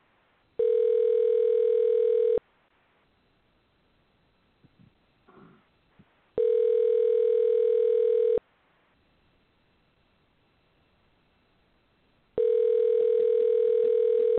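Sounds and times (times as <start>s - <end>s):
phone call ringing out through the line: 0.6s - 2.4s, 6.4s - 8.4s, 12.4s - 14.3s.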